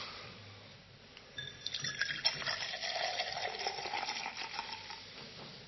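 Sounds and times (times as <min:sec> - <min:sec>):
wine pouring into a cup: 0:01.4 - 0:05.1.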